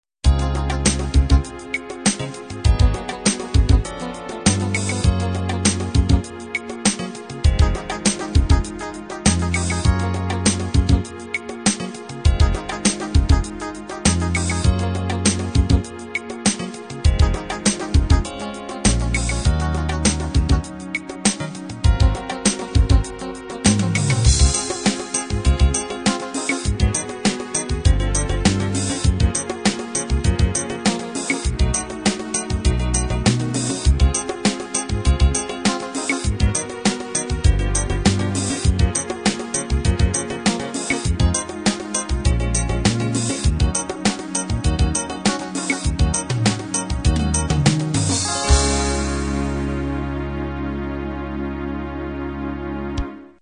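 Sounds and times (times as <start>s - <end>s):
slow ballad: 0.3s - 53.4s.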